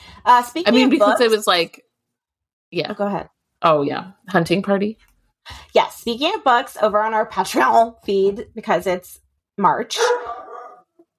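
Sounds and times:
speech: 0:00.2 - 0:01.8, 0:02.7 - 0:10.4
dog barking sharply: 0:10.0 - 0:11.0.

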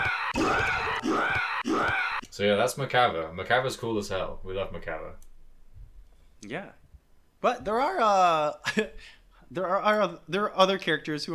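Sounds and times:
video game character screaming: 0:00.0 - 0:02.3
speech: 0:02.4 - 0:05.3, 0:06.4 - 0:06.8, 0:07.4 - 0:11.3.

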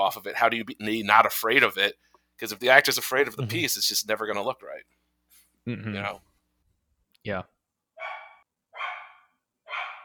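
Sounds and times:
speech: 0:00.0 - 0:05.0, 0:05.6 - 0:06.3, 0:07.2 - 0:07.5
dog barking: 0:08.0 - 0:10.0.

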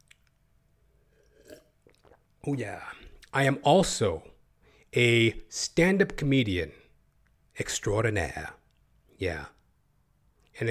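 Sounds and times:
person sipping water: 0:00.0 - 0:02.4
speech: 0:02.4 - 0:04.3, 0:04.9 - 0:06.8, 0:07.6 - 0:08.6, 0:09.2 - 0:09.6.

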